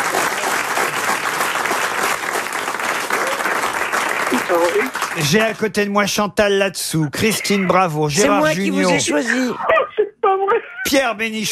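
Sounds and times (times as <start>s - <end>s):
audience of about 200 people applauding: 0.0s - 5.8s
speech: 4.5s - 11.5s.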